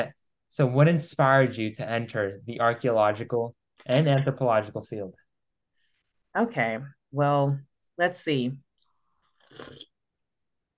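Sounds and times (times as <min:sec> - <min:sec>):
speech: 0:00.0 - 0:05.2, 0:06.3 - 0:08.6, 0:09.5 - 0:09.9
person slurping a sip of tea: 0:09.3 - 0:10.0.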